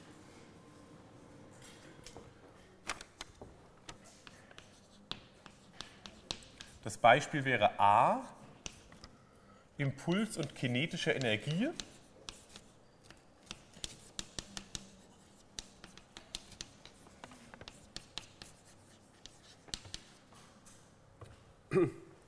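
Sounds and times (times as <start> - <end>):
formulas being written out by hand: 3.9 - 7.4, 8.6 - 9.1, 10.1 - 20.3
speech: 6.8 - 8.4, 9.8 - 11.9.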